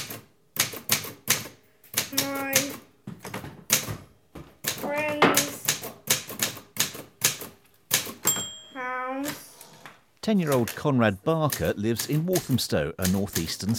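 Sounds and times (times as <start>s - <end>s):
Olympia Monica Deluxe manual typewriter typing: 0.0s - 3.9s, 4.6s - 8.3s, 10.4s - 13.7s
typewriter carriage return bell ringing: 8.2s - 8.8s
speech: 10.3s - 13.7s.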